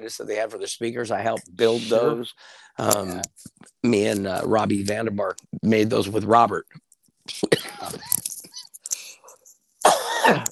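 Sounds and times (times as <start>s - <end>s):
speech: 0.0s - 8.2s, 10.2s - 10.5s
man coughing with throaty clearing: 7.4s - 8.1s, 9.8s - 10.5s.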